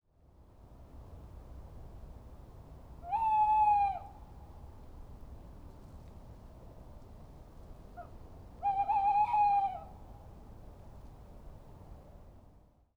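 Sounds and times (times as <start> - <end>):
Strix aluco: 3.0 - 4.1, 8.0 - 9.9.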